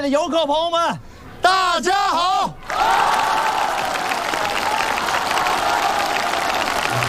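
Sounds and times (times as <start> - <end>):
speech: 0.0 - 3.5
dense applause from a sizable audience: 2.6 - 7.0.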